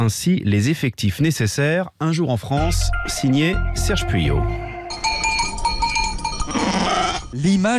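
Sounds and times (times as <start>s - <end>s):
speech: 0.0s - 5.1s, 7.3s - 7.7s
metallic bells jangling: 4.9s - 7.7s
flock of sheep bleating: 6.5s - 7.4s.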